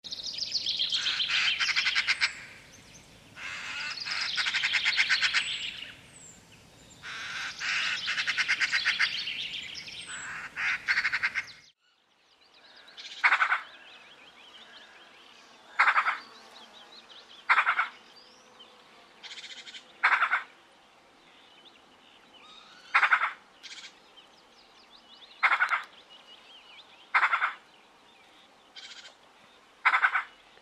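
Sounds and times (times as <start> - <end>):
magpie giving a hoarse laughing series of calls: 0.8 - 2.6, 3.4 - 6.0, 7.0 - 11.7, 13.1 - 13.7, 15.7 - 16.2, 17.5 - 18.0, 19.2 - 20.5, 22.6 - 23.9, 25.4 - 25.9, 27.2 - 27.6, 29.8 - 30.4.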